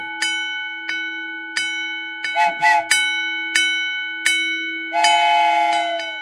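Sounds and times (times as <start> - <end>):
railroad crossing bell clanging: 0.0 - 6.2
approaching train sounding loud horn blasts: 2.4 - 2.9, 4.9 - 6.2.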